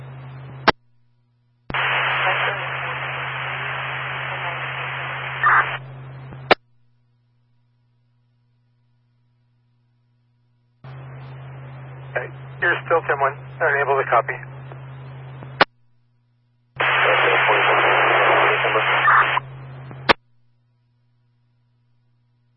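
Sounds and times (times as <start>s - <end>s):
low electrical hum: 0.0s - 22.5s
harsh radio static: 1.7s - 6.6s, 10.9s - 15.7s, 16.8s - 20.2s
speech: 12.9s - 14.5s.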